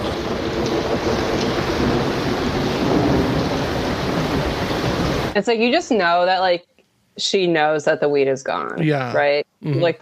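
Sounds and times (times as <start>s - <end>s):
deep rolling thunder: 0.0s - 5.4s
steady dense rain in a thunderstorm: 0.0s - 5.4s
speech: 5.4s - 10.0s.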